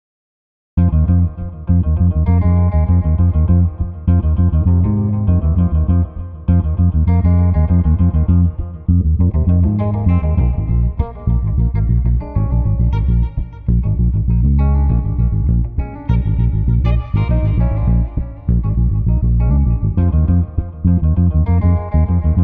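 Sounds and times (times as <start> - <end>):
street guitar combo without drums: 0.8 - 22.4.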